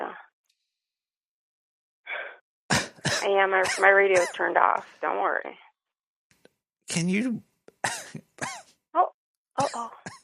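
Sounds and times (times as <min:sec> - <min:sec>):
throat clearing: 0:02.7 - 0:04.3, 0:07.7 - 0:08.7, 0:09.6 - 0:10.2
caller coughing on request: 0:02.7 - 0:04.4, 0:07.8 - 0:08.7, 0:09.6 - 0:10.2
speech: 0:03.2 - 0:05.6, 0:06.9 - 0:10.1.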